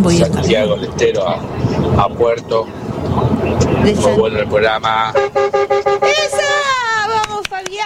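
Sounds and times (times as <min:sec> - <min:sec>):
speech: 0:00.0 - 0:05.7
truck horn honking: 0:03.4 - 0:06.9.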